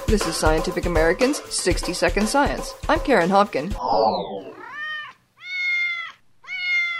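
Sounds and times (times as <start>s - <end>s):
speech: 0.1s - 4.6s
house cat meowing: 3.9s - 6.9s.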